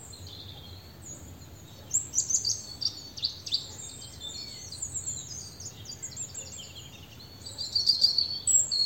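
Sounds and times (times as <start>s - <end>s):
European robin Erithacus rubecula singing: 0.0s - 8.8s.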